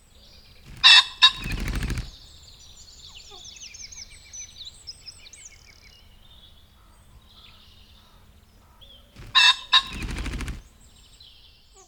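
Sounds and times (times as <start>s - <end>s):
soft bird chatter: 0.0s - 11.8s
pheasant whirring wingbeats: 0.4s - 2.4s, 9.0s - 11.3s
ring-necked pheasant flushing and cackling: 0.6s - 2.2s, 6.7s - 10.9s.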